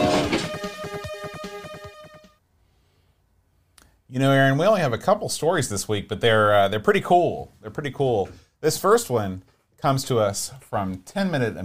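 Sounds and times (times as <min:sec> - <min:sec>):
steady whistle-like train tone: 0:00.0 - 0:01.7
speech: 0:04.1 - 0:11.6.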